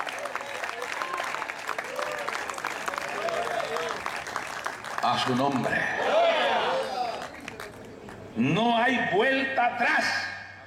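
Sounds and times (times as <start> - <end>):
church audience applauding: 0.0 - 5.8
speech: 5.0 - 6.2, 8.4 - 10.2.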